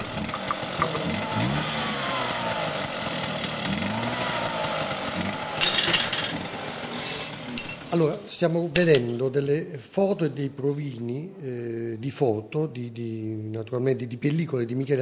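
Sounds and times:
motorcycles roaring past: 0.0s - 7.6s
speech: 7.9s - 14.9s.

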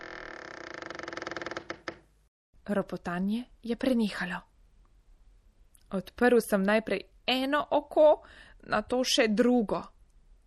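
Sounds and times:
wardrobe door sliding open with a rising creak: 0.0s - 2.1s
speech: 2.7s - 4.5s, 5.9s - 9.9s.

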